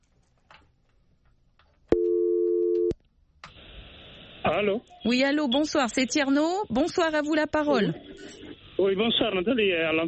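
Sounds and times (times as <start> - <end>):
telephone line tone as a caller is connected to a radio call-in programme: 1.9 - 3.0
speech: 4.5 - 10.0.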